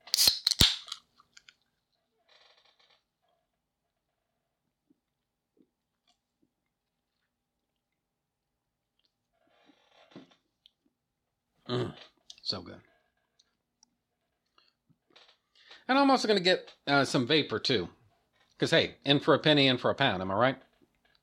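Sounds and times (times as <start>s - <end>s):
person sipping from a soda can: 0.0s - 1.0s
soda can crackling metallic pops: 0.0s - 1.5s
speech: 11.7s - 12.9s, 15.9s - 18.0s, 18.6s - 20.7s.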